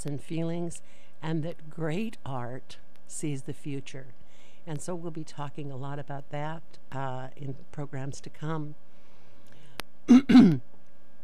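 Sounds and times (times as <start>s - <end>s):
speech: 0.0s - 8.8s, 10.1s - 10.7s
throat-clearing cough: 10.1s - 10.6s.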